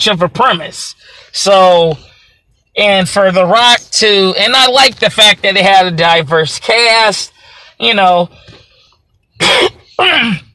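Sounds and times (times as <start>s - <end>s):
speech: 0.0s - 2.1s, 2.8s - 8.6s, 9.4s - 10.4s
harsh raspy throat clearing: 9.4s - 10.5s.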